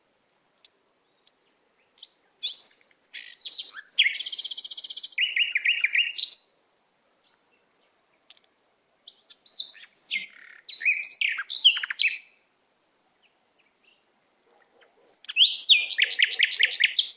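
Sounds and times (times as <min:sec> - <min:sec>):
canary singing whistled notes, buzzy trill and chirps: 0:02.0 - 0:06.4, 0:09.1 - 0:12.3, 0:14.7 - 0:17.1.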